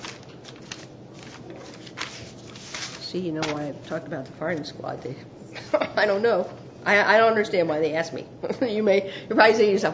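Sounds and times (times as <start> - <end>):
paper pages being turned over: 0.0 - 4.7
paper rustling and shuffling: 0.0 - 4.7
speech: 3.1 - 9.9.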